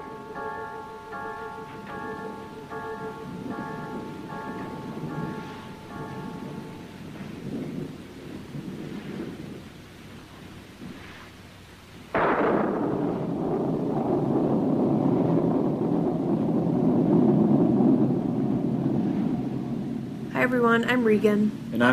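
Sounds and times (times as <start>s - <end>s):
deep rolling thunder rumble: 0.0s - 21.9s
steady rain hissing: 0.0s - 21.9s
speech: 20.5s - 21.9s.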